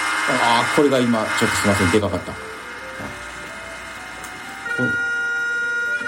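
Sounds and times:
speech: 0.3 - 2.5
outdoor municipal music siren in Japan playing an evening melody: 1.6 - 6.0.

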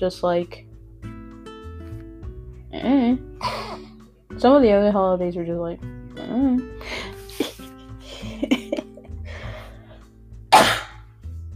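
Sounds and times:
speech: 0.0 - 0.7, 4.4 - 7.0
coughing: 3.4 - 4.0, 10.5 - 11.1
throat clearing: 3.4 - 4.0, 10.5 - 11.1.

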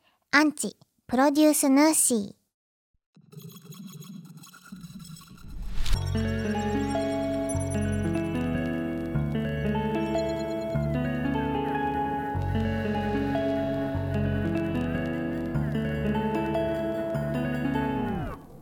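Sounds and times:
speech: 0.4 - 2.4
instrumental song intro with electronic chords and synth layers: 5.5 - 18.6.

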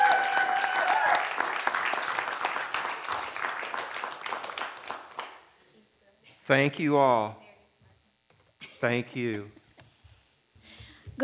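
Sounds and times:
whistle or cheer: 0.0 - 1.3
crowd applauding: 0.0 - 5.5
speech: 6.5 - 7.4, 8.8 - 9.6.

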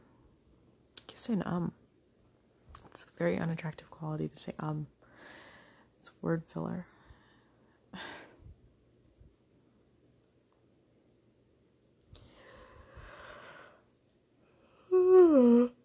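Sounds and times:
speech: 1.2 - 1.8, 3.0 - 5.4, 6.1 - 7.0
person yawning with a groan: 14.9 - 15.8.

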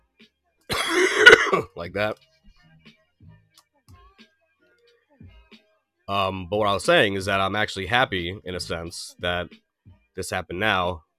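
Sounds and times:
sick person coughing: 0.7 - 1.8
speech: 1.5 - 2.3, 6.1 - 9.6, 10.2 - 11.0.

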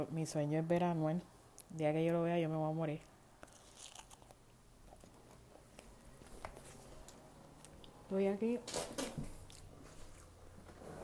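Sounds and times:
speech: 0.0 - 3.1, 8.1 - 9.3
person biting and chewing crunchy vegetables: 3.4 - 8.0.

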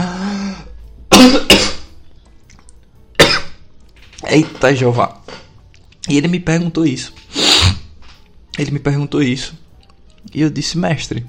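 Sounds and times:
loud coughs: 1.1 - 1.9, 3.2 - 3.6
speech: 4.3 - 5.2, 6.1 - 7.2, 8.6 - 9.6, 10.2 - 11.2.

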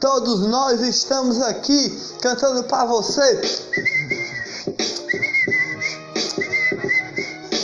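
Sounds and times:
speech: 0.0 - 4.0
person whistling a lively bouncy tune: 3.5 - 7.6.

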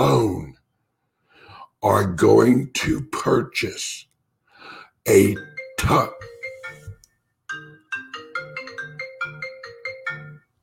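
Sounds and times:
speech: 1.8 - 4.1, 4.7 - 6.3
phone ringtone for an incoming call: 5.1 - 10.6.

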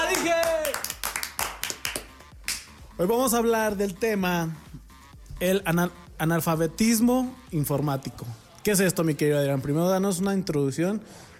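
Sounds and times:
small group applauding with brisk uneven hand claps: 0.0 - 2.9
speech: 3.0 - 4.7, 5.4 - 11.3.

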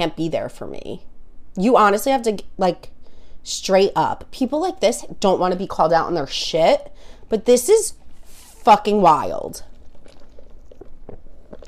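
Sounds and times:
speech: 0.0 - 8.0, 8.6 - 9.7
sipping coffee: 9.5 - 11.6
wet mouth clicks and gulps: 9.6 - 11.6.

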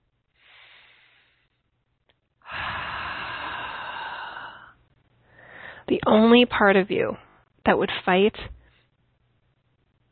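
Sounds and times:
deep breath: 0.3 - 1.7, 2.4 - 5.8
speech: 5.9 - 8.6.

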